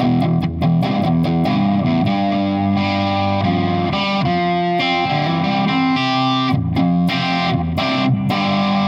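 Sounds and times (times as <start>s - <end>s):
electric guitar played through a prototype fuzzy overdrive distortion pedal: 0.0s - 8.8s.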